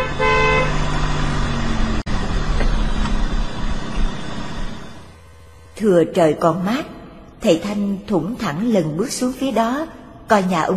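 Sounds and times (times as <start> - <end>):
car horn toot as a car pulls in off the road: 0.0 - 0.8
car engine and road rumble: 0.0 - 10.3
speech: 5.8 - 10.7.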